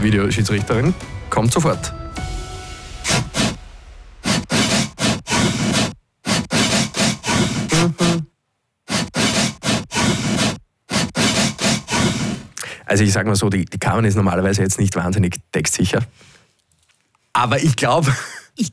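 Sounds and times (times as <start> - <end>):
speech: 0.0 - 2.3, 12.9 - 16.3, 17.4 - 18.7
hand saw cutting through wood: 4.3 - 8.1, 8.9 - 12.5.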